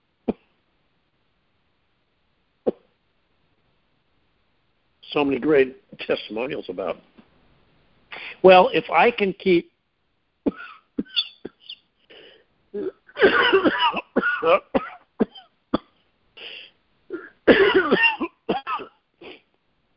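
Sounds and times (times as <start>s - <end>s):
throat-clearing: 2.7s - 2.9s, 10.5s - 19.5s
speech: 5.1s - 7.1s, 8.4s - 9.7s, 12.7s - 14.8s
harsh coughing and choking: 10.5s - 19.5s.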